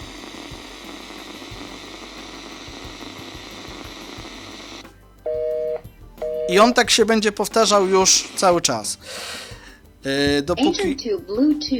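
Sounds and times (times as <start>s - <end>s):
radio static hiss from portable speaker: 0.0s - 5.2s, 6.5s - 9.0s
speech: 6.5s - 9.4s, 10.0s - 11.7s.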